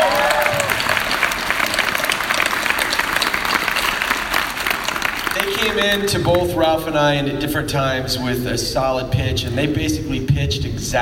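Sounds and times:
crowd applauding: 0.0 - 6.4
speech: 5.7 - 11.0.

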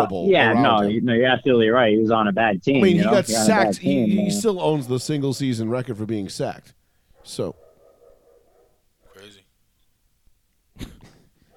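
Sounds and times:
laughter: 0.0 - 1.4, 2.8 - 4.5
speech: 0.0 - 7.6
dog barking: 7.2 - 9.3.

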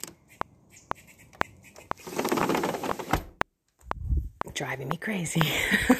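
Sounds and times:
faint bird calling outside a window: 0.0 - 3.1
sharp clicks: 0.0 - 5.6
rustling noise: 1.7 - 3.4
speech: 4.6 - 5.9
laughter: 5.5 - 5.9.

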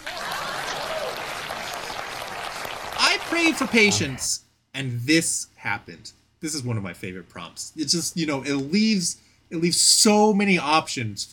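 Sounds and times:
applause from a small crowd: 0.0 - 4.2
speech: 3.3 - 11.3.

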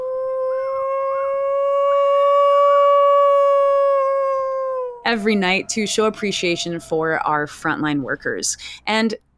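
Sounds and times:
people in Missoula Montana howling like wolves at night: 0.0 - 6.9
speech: 5.1 - 9.3.

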